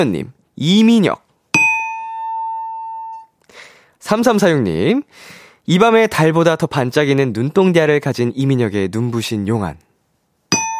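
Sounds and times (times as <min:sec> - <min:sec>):
speech: 0:00.0 - 0:01.2, 0:04.0 - 0:09.9
ding-dong-dang correct-answer chime: 0:01.6 - 0:03.3, 0:10.5 - 0:10.7.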